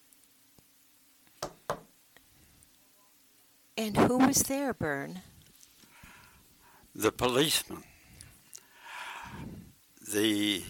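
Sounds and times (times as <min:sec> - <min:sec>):
firm knocks on a door: 0:01.4 - 0:01.9
speech: 0:03.8 - 0:05.3, 0:07.0 - 0:07.9, 0:10.1 - 0:10.6.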